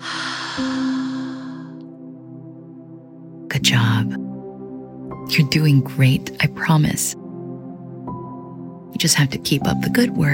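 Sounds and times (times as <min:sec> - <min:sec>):
slow deep breath drawn in and let out: 0:00.0 - 0:02.0
speech: 0:00.6 - 0:00.8, 0:05.3 - 0:07.2, 0:09.0 - 0:10.3.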